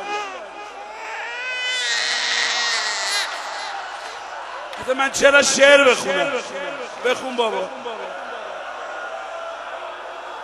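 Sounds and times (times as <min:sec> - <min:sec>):
baby crying: 0:00.0 - 0:04.3
speech: 0:04.8 - 0:08.2.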